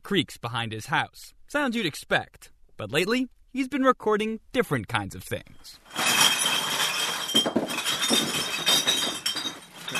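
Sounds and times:
speech: 0:00.1 - 0:06.0
beer bottles crashing down at a recycling centre: 0:05.8 - 0:09.9.

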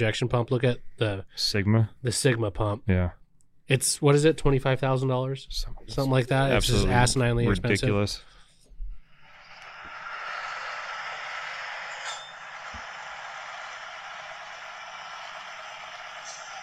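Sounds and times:
speech: 0:00.0 - 0:08.4
V8 engine running at a fair sled-pull event: 0:09.4 - 0:16.6.

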